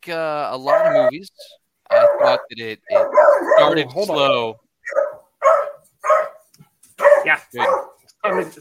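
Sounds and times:
speech: 0.0s - 5.0s, 7.3s - 8.5s
dog barking: 0.6s - 1.2s, 1.8s - 3.9s, 4.8s - 8.5s.

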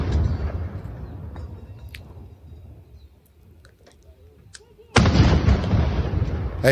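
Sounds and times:
ceremonial cannon salute explosions: 0.0s - 1.4s, 4.9s - 6.7s.

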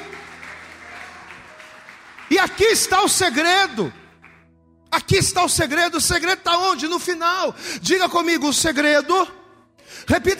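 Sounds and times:
large crowd clapping: 0.0s - 4.4s
speech: 2.3s - 4.0s, 5.1s - 9.4s, 10.0s - 10.3s.

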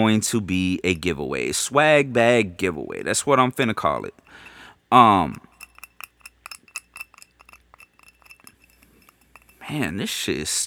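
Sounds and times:
speech: 0.0s - 5.5s, 9.7s - 10.6s
herb grinder tapped to knock residue loose: 4.2s - 4.6s, 5.2s - 9.7s.

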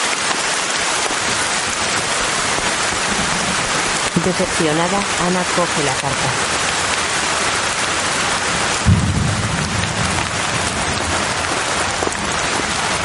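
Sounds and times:
heavy rain pouring in daylight: 0.0s - 13.0s
low rumble of thunder: 1.1s - 5.2s, 6.0s - 13.0s
speech: 4.2s - 6.6s.

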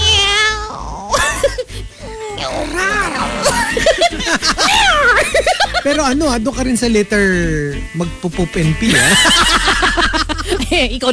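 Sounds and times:
person imitating cat meows: 0.0s - 1.1s, 2.4s - 3.4s
person laughing and chuckling: 1.1s - 1.8s, 3.4s - 6.2s, 8.8s - 10.9s
speech: 5.8s - 9.6s, 10.7s - 11.1s.

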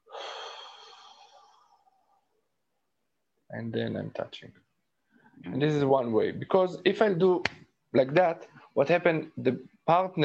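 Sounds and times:
slow breathy exhale from a person preparing to touch a partner's body: 0.0s - 1.9s
speech: 3.5s - 4.7s, 5.4s - 10.2s.

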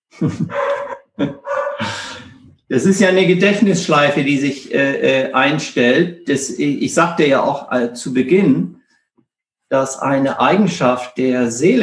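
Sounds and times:
laughter: 0.1s - 3.2s
speech: 0.2s - 1.4s, 2.7s - 8.8s, 9.7s - 11.8s
dog barking: 0.5s - 2.5s.

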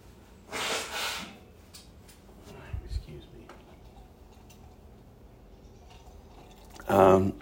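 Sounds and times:
person blowing nose: 0.5s - 1.4s
speech: 6.9s - 7.4s.

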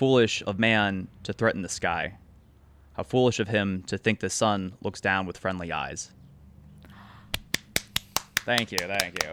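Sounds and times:
speech: 0.0s - 2.2s, 3.0s - 6.2s, 8.5s - 9.3s
one person clapping hands: 7.3s - 9.3s.

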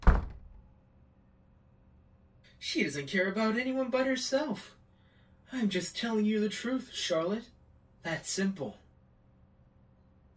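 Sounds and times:
door shutting: 0.0s - 0.6s
speech: 2.6s - 4.8s, 5.5s - 8.8s.

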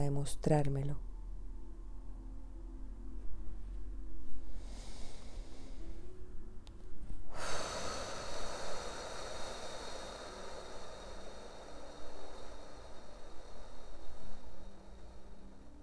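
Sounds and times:
speech: 0.0s - 1.1s
low steady hum: 0.0s - 15.8s
deep slow breathing: 4.0s - 15.8s.

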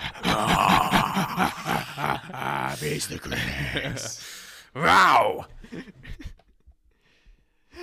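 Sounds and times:
laughter: 0.0s - 4.2s, 5.2s - 6.5s
voice imitating a lion's growling breath: 0.0s - 4.2s, 4.8s - 5.5s
speech: 2.8s - 6.0s.

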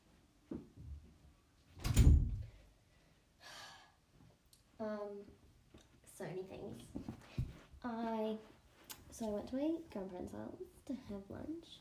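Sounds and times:
bedroom door swinging shut with a solid thud: 1.8s - 2.4s
speech: 6.4s - 8.5s, 9.1s - 11.7s.

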